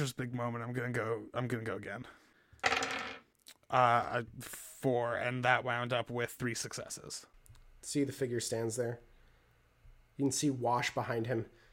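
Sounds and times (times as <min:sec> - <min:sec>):
speech: 0:00.0 - 0:02.2, 0:03.7 - 0:09.1, 0:10.2 - 0:11.6
blood dice in a tabletop game clattering across a hard table: 0:02.6 - 0:03.3.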